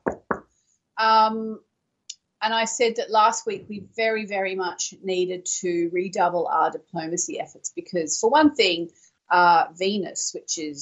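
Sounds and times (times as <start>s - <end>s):
knocking on wood for luck: 0.0s - 0.4s
speech: 1.0s - 1.7s, 2.4s - 10.7s.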